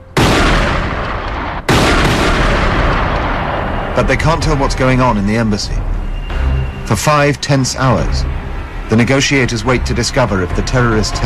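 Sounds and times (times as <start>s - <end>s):
booming gunshots inside an embassy: 0.0s - 5.1s
speech: 4.0s - 5.8s, 6.9s - 11.2s.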